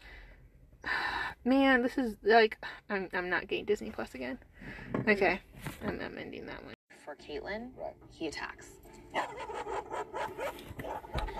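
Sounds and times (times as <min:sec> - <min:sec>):
speech: 0:00.8 - 0:11.3
dog barking: 0:09.1 - 0:11.3.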